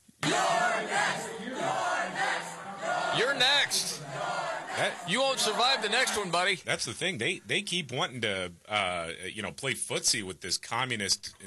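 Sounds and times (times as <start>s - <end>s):
large crowd chanting at a rally in New York: 0.2s - 6.5s
speech: 3.2s - 11.4s.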